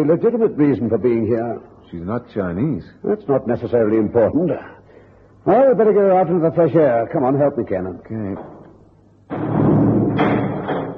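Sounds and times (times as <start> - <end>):
speech: 0.0 - 4.8, 5.4 - 8.6, 9.3 - 9.7
heavy temple door in a dragon's mouth slamming shut: 9.3 - 10.9.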